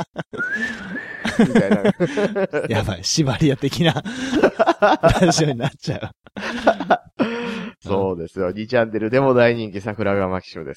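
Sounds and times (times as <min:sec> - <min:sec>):
laughter: 0:00.0 - 0:03.0, 0:03.6 - 0:07.3
person whistling one sustained clear note: 0:00.4 - 0:01.4
brief breathy sounds: 0:00.4 - 0:02.5, 0:04.0 - 0:04.6, 0:06.4 - 0:07.9
speech: 0:01.4 - 0:10.7.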